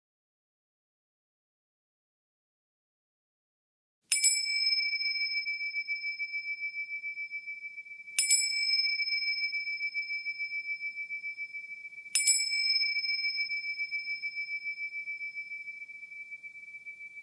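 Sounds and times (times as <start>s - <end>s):
meditation bell chimes: 4.1s - 17.2s.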